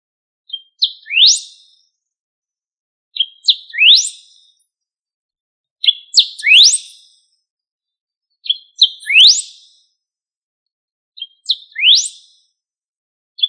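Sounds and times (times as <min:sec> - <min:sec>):
bird song: 0:00.4 - 0:02.2, 0:03.1 - 0:10.1, 0:10.7 - 0:13.4.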